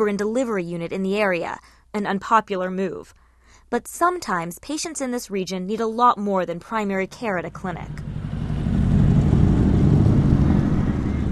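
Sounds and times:
speech: 0:00.0 - 0:08.2
red motorcycle engine rumbling as it rides up: 0:07.5 - 0:11.3.

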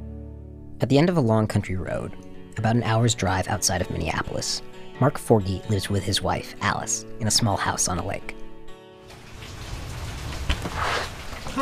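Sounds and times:
speech: 0:00.8 - 0:08.4
steady rain falling outside a small lakeside house: 0:09.1 - 0:11.5.

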